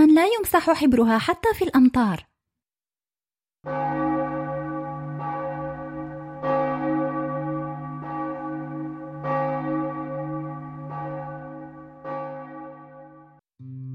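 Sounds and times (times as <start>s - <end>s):
speech: 0.1s - 2.3s, 3.6s - 4.1s
church bell tolling: 3.7s - 13.4s.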